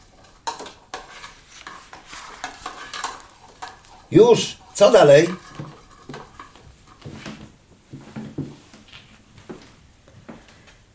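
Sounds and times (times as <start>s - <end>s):
spoon stirring vegetable salad with mayonnaise in a bowl: 0.0s - 7.5s
speech: 4.1s - 5.4s.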